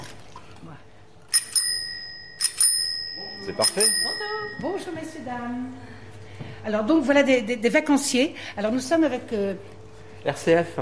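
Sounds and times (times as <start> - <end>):
bell of a 1960 bicycle ringing: 1.3 - 5.3
speech: 3.4 - 10.8.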